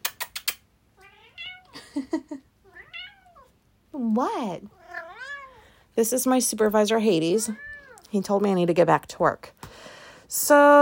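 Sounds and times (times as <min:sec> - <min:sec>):
male cat meowing: 0:01.0 - 0:01.8, 0:02.6 - 0:03.5, 0:04.7 - 0:05.7, 0:07.5 - 0:08.1
speech: 0:02.0 - 0:02.5, 0:03.9 - 0:04.8, 0:06.0 - 0:10.8.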